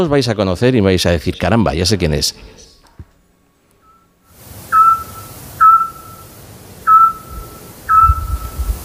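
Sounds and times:
speech: 0.0 - 2.6
soft hiss of night noise: 0.1 - 8.8
Eurasian scops owl piping whistles at night: 4.7 - 8.7.

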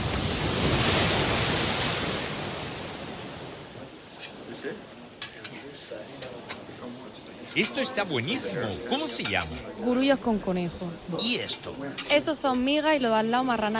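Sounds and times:
sea waves surging and receding: 0.0 - 13.7
cutlery and dishes clinking: 4.1 - 4.4, 5.2 - 5.6, 6.2 - 6.7, 7.4 - 7.9, 8.9 - 9.7, 11.2 - 12.7
speech: 7.6 - 13.7.

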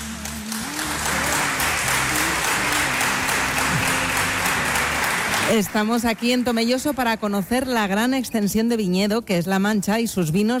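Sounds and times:
applause from a large crowd: 0.0 - 7.5
speech: 5.5 - 10.5.

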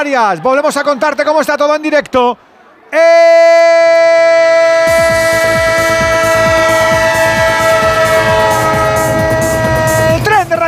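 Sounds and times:
speech: 0.0 - 5.5
train horn in a sports radio jingle: 5.0 - 10.3
warbling pitch bend: 6.2 - 10.2.

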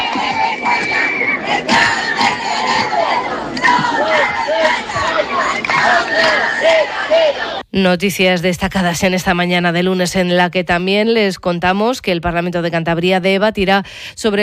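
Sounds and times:
scattered whistles in a protest crowd: 0.0 - 2.3
large crowd of protesters shouting slogans: 0.0 - 7.6
speech: 6.2 - 14.4.

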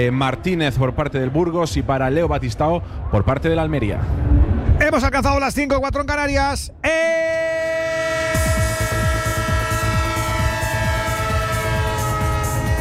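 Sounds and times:
speech: 0.0 - 7.5
multi-toned train horn sound effect: 7.6 - 12.8.

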